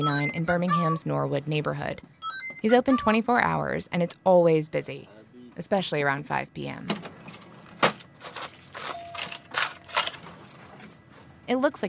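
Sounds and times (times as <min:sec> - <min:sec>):
speech: 0:00.0 - 0:07.4, 0:11.5 - 0:11.8
gas station cash register clacking and clicking: 0:06.9 - 0:10.9.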